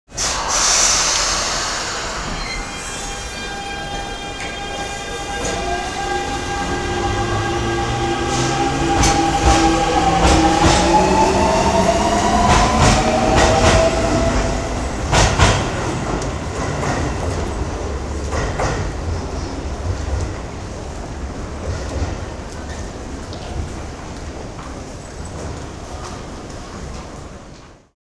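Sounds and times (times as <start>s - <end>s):
Dutch metro train departing: 0.1s - 27.9s.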